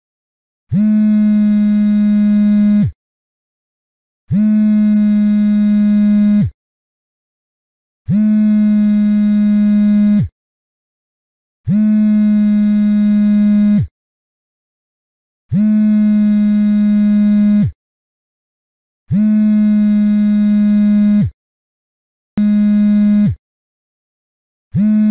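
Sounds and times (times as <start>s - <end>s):
mobile phone vibrating: 0.7s - 3.0s, 4.3s - 6.6s, 8.1s - 10.4s, 11.6s - 14.0s, 15.5s - 17.8s, 19.1s - 21.4s, 22.4s - 23.4s, 24.7s - 25.0s.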